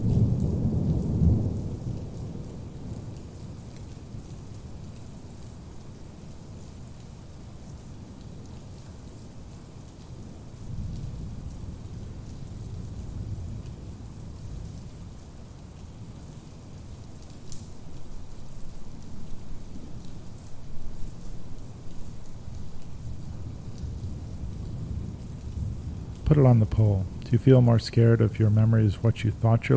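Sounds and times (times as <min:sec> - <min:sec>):
steady wash of falling rain: 0:00.0 - 0:29.7
deep thunder rolling: 0:23.0 - 0:29.7
speech: 0:26.3 - 0:29.7.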